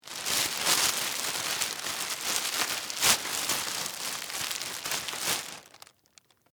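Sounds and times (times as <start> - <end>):
household garbage bag being tied: 0.0 - 6.3.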